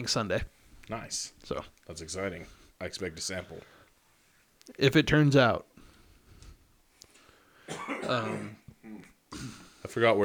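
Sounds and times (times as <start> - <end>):
speech: 0.0 - 3.8, 4.7 - 5.7, 7.7 - 10.2
quiet breathing: 0.4 - 0.9, 2.2 - 4.6, 5.7 - 7.7
person coughing raspily from a lingering cough: 7.7 - 9.7
throat clearing: 7.7 - 9.7.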